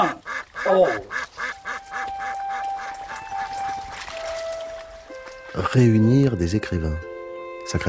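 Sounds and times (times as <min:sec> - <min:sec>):
speech: 0:00.0 - 0:01.2, 0:05.6 - 0:07.1, 0:07.7 - 0:07.8
flock of ducks squawking and quacking, chased by a dog: 0:00.0 - 0:04.0.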